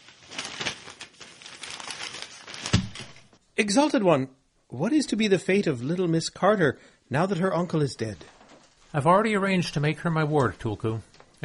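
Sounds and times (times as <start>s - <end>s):
newspaper pages rustling and crinkling: 0.0s - 3.4s, 8.0s - 11.4s
newspaper sheet crackling as it is handled: 0.0s - 3.4s, 8.0s - 11.4s
speech: 3.6s - 11.4s.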